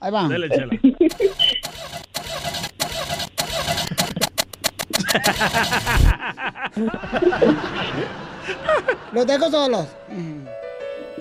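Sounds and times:
speech: 0:00.0 - 0:01.5, 0:05.2 - 0:10.0
laughter: 0:00.3 - 0:01.6, 0:03.8 - 0:09.8
voice imitating a broken-down car engine cranking without catching: 0:01.1 - 0:06.1.

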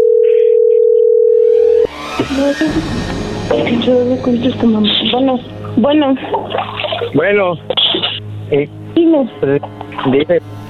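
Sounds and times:
telephone dialing tone while placing a call: 0:00.0 - 0:01.8
speech: 0:02.4 - 0:07.8, 0:08.5 - 0:10.6.

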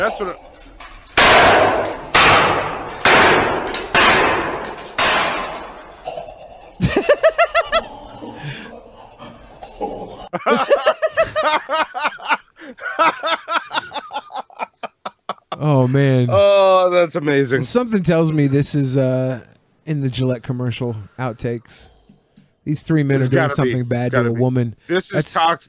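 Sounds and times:
speech: 0:00.0 - 0:00.5, 0:15.8 - 0:21.9, 0:22.6 - 0:25.6
loud sharp smashing blows on a laptop: 0:01.1 - 0:06.0
several people laughing heartily: 0:06.8 - 0:16.5, 0:23.2 - 0:24.1.

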